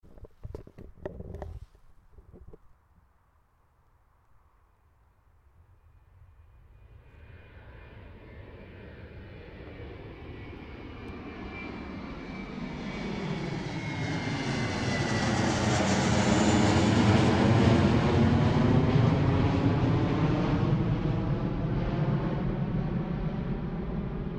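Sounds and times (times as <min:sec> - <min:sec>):
airplane: 0:05.0 - 0:24.3.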